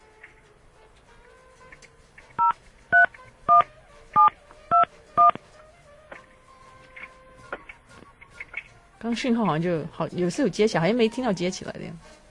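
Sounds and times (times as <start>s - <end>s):
faint noise: 0.0s - 12.3s
telephone DTMF keypad dialing beeps: 2.4s - 3.6s, 4.2s - 5.4s
speech: 9.1s - 12.1s.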